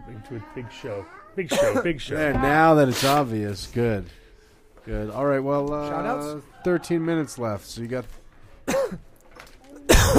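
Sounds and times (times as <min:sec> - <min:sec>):
speech: 0:00.1 - 0:04.2, 0:04.8 - 0:09.1
harsh loud coughs into a microphone: 0:01.5 - 0:02.0, 0:08.6 - 0:09.1, 0:09.9 - 0:10.1.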